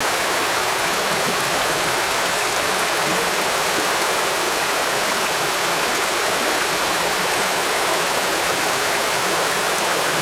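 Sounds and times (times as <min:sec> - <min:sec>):
continuous rushing stream water flowing: 0:00.0 - 0:10.2.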